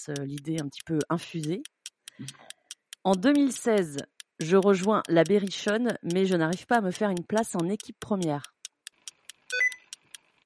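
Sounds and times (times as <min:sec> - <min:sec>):
speech: 0:00.0 - 0:08.5
short electronic ticks from a pet's paw on a computer: 0:00.0 - 0:10.3
brief tonal electronic beep from a computer: 0:09.5 - 0:09.9.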